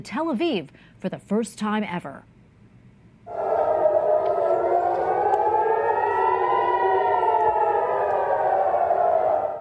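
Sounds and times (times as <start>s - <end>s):
speech: 0.0s - 2.3s
air raid sirens wailing over a city: 3.3s - 9.5s.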